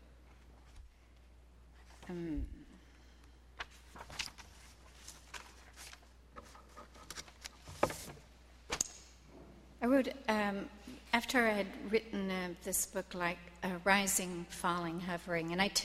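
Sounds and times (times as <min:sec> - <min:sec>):
low hum: 0:00.0 - 0:15.8
speech: 0:02.1 - 0:02.6, 0:10.0 - 0:15.8
rustling with soft crinkles and brushing noises: 0:03.6 - 0:08.8.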